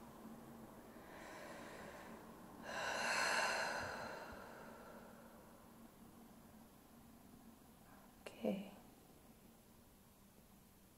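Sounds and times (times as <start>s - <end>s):
slow deep breath during a guided healing session: 0.9s - 5.7s.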